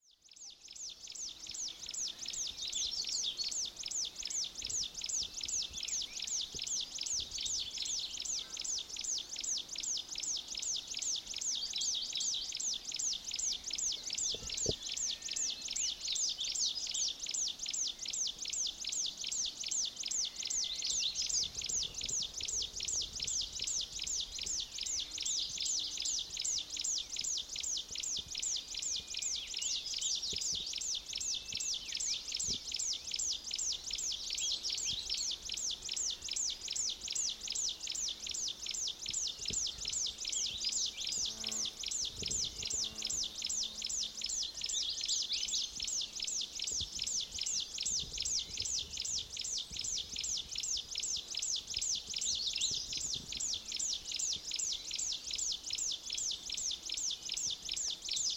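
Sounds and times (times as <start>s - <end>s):
Chinese Leaf Warbler Phylloscopus yunnanensis: 0.0s - 58.3s.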